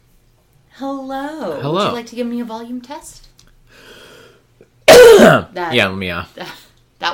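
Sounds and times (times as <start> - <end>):
speech: 0.8 - 3.3, 5.3 - 7.1
loud rasping cough: 4.9 - 5.5.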